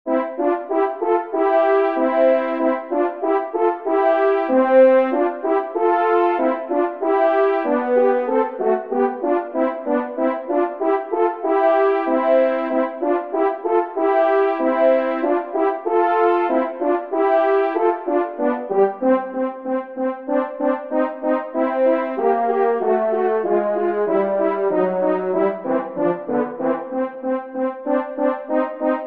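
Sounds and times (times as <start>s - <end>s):
duo playing music in B-flat major: 0.1s - 29.0s.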